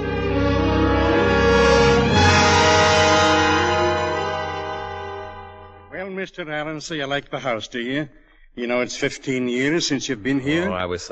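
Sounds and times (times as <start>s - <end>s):
train horn: 0.0s - 6.0s
speech: 6.4s - 11.1s.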